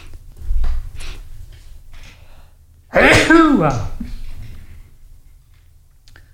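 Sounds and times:
loud sneeze: 0:02.9 - 0:03.8
speech: 0:02.9 - 0:04.0.

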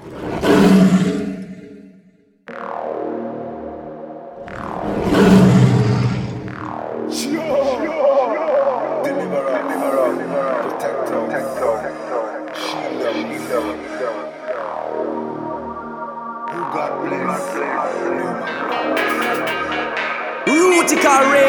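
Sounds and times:
deep rumbling lion-like roars: 0:00.0 - 0:01.8, 0:04.4 - 0:06.7
dense layer of processed sound: 0:00.0 - 0:21.4.

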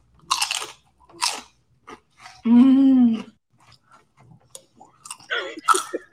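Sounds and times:
crunchy bites of a fried cream cheese dragon: 0:00.2 - 0:02.4
sustained voiced hum: 0:02.5 - 0:03.3.

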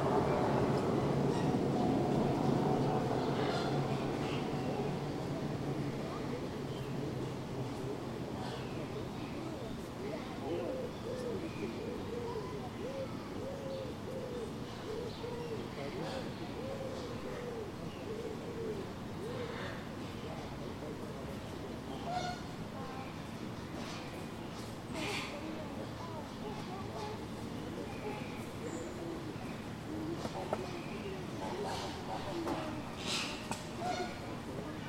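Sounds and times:
steady murmur of voices at a zoo: 0:00.0 - 0:34.8
soft cooing of pigeons or doves: 0:09.4 - 0:19.8.

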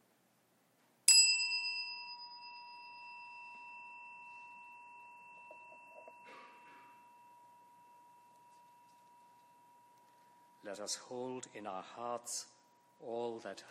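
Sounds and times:
meditation chime struck and ringing: 0:01.1 - 0:11.6
speech: 0:10.6 - 0:13.6.

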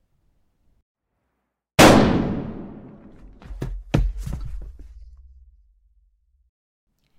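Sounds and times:
single gunshot fired in a cellar: 0:01.8 - 0:03.1
dull thuds and knocks: 0:03.1 - 0:05.1.

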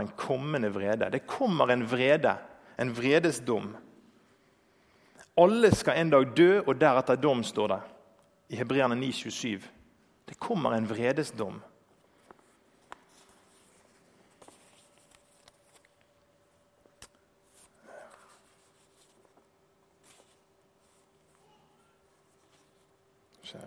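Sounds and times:
speech: 0:00.0 - 0:03.9, 0:05.4 - 0:07.9, 0:08.5 - 0:11.7
paper sheets shuffled and flipped: 0:12.4 - 0:16.1, 0:17.4 - 0:21.3.

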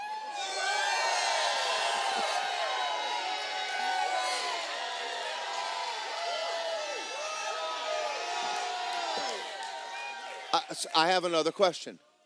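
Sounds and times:
large church audience shouting and cheering in worship: 0:00.0 - 0:11.2
speech: 0:10.5 - 0:12.1.

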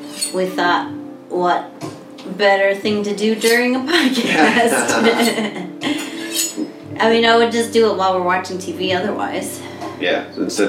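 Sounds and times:
metal utensils and cutlery clattering and clinking: 0:00.0 - 0:00.6, 0:04.8 - 0:06.8
speech: 0:00.3 - 0:06.1, 0:07.0 - 0:10.6
laughter: 0:03.9 - 0:06.4.

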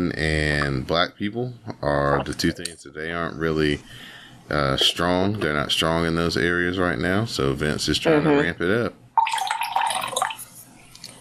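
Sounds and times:
speech: 0:00.0 - 0:09.0
beverage pouring into a glass: 0:09.2 - 0:10.5.

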